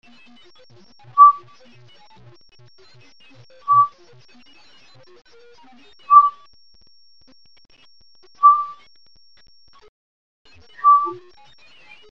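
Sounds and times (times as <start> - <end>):
Northern pygmy owl whistled toots: 1.2 - 1.4, 3.7 - 3.9, 6.1 - 6.4, 8.4 - 8.8, 10.8 - 11.2.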